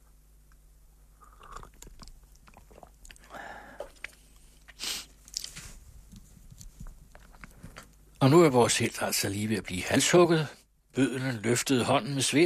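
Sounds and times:
wet slurping of hot tea: 1.2s - 3.0s
speech: 8.2s - 12.4s.

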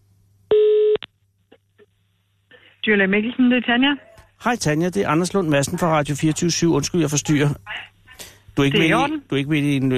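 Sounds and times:
steady electronic telephone tone: 0.5s - 1.1s
speech: 2.8s - 7.9s, 8.6s - 9.9s.

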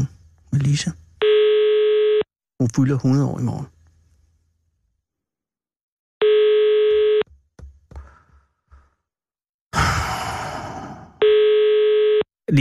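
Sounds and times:
speech: 0.7s - 1.0s, 2.6s - 3.8s
telephone ringing: 1.2s - 2.3s, 6.2s - 7.3s, 11.2s - 12.3s
faint breathing: 7.9s - 9.0s, 9.8s - 11.2s
burst of breathy noise: 9.7s - 11.2s.

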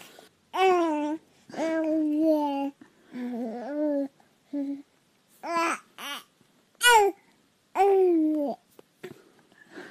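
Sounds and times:
baby babbling: 0.5s - 7.2s, 7.8s - 8.6s.

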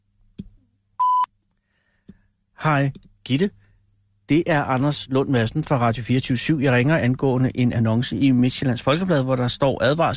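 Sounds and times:
voicemail beep: 1.0s - 1.3s
speech: 2.6s - 3.6s, 4.3s - 10.1s.

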